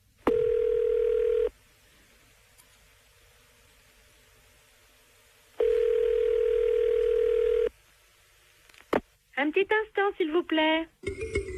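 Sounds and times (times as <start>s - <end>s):
telephone dial tone while placing a call: 0.3s - 1.5s, 5.6s - 7.7s
speech: 9.4s - 11.3s.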